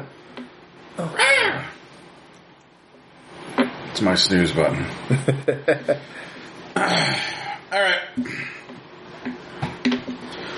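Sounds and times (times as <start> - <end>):
voice imitating a hawk's screech: 1.0 - 1.8
speech: 4.0 - 8.5.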